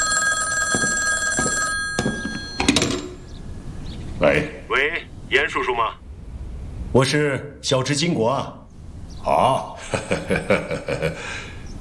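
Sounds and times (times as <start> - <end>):
old telephone bell ringing: 0.0 - 3.7
speech: 4.2 - 6.0, 6.9 - 8.6, 9.2 - 11.5
laughter: 9.3 - 11.6.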